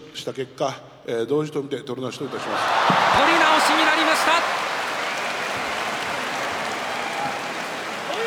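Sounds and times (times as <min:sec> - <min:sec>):
speech: 0:00.2 - 0:04.7
large crowd applauding inside a sumo arena: 0:02.3 - 0:08.2.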